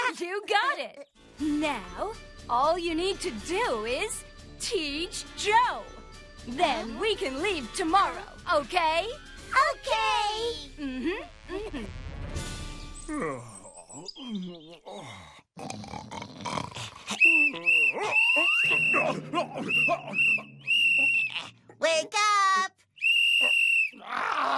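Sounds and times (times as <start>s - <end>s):
speech: 0.2s - 11.9s, 14.1s - 20.5s, 21.8s - 22.8s
voices grunting: 13.1s - 22.2s, 23.4s - 24.5s
shrill whistle blasts: 17.2s - 21.4s, 23.0s - 24.0s.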